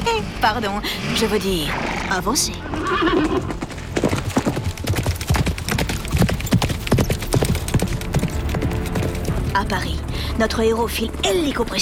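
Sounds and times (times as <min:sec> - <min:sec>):
speech: 0:00.1 - 0:04.2, 0:09.6 - 0:11.8
horse whinnying: 0:01.0 - 0:04.1
horse hooves clip-clopping as the horse sets off: 0:01.6 - 0:11.7.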